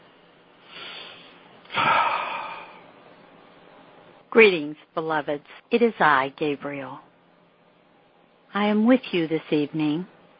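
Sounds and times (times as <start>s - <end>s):
deep breath drawn in during a guided centering meditation: 0.6s - 2.8s
speech: 4.4s - 7.1s, 8.5s - 10.2s.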